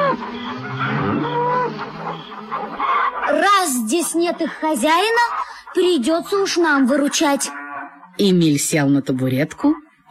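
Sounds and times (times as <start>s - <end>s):
cows mooing loudly: 0.0s - 3.6s, 5.2s - 8.3s
speech: 3.4s - 7.6s, 8.2s - 10.1s.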